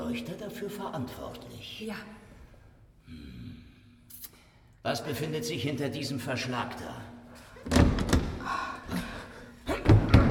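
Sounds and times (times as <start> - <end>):
speech: 0.1 - 2.2, 3.1 - 3.4, 4.8 - 9.0
door shoved against something heavy: 7.6 - 8.4, 9.8 - 10.2.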